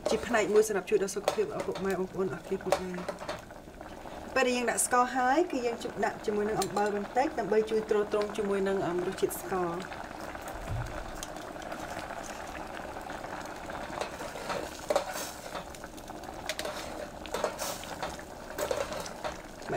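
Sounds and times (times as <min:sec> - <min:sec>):
spoon scraping and stirring in a pot of sticky glutinous rice dessert: 0:00.0 - 0:02.0, 0:02.6 - 0:03.4, 0:13.8 - 0:15.8, 0:16.4 - 0:19.4
speech: 0:00.1 - 0:03.3, 0:04.4 - 0:10.0.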